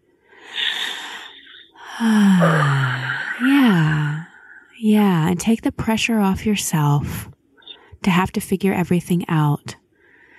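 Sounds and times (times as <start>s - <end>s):
deep breath drawn in with a breathy inhale: 0.2s - 4.7s
long voiced sigh falling in pitch: 0.4s - 4.7s
speech: 2.0s - 2.8s, 3.4s - 4.1s, 4.8s - 7.4s, 8.0s - 9.8s.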